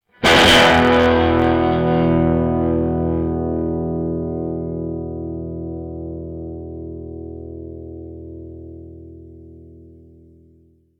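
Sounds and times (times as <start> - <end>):
strum: 0.1 - 3.9.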